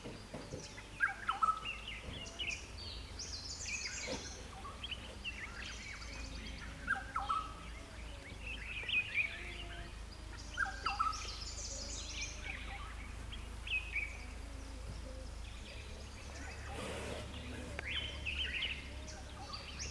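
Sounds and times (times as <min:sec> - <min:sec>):
dense chorus of other birds' higher chirps: 0:00.2 - 0:19.8.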